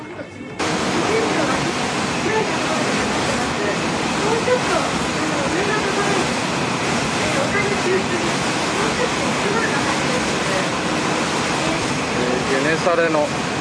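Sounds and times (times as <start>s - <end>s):
rushing water from a boat cruising on a lake: 0.6s - 13.5s.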